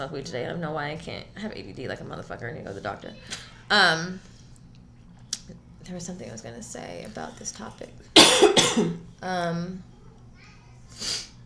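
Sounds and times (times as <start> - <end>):
speech: 0.0 - 4.3, 5.5 - 9.9, 10.9 - 11.2
harsh cough-like burst from a sick person: 8.2 - 9.0
quick airy sniffle through the nose: 10.9 - 11.4.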